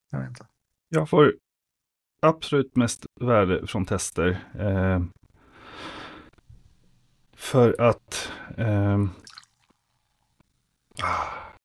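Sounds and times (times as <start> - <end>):
speech: 0.1 - 1.4, 2.2 - 5.2, 7.4 - 9.3, 11.0 - 11.4
faint drips of cola: 6.5 - 11.4
cola being poured: 9.0 - 10.2.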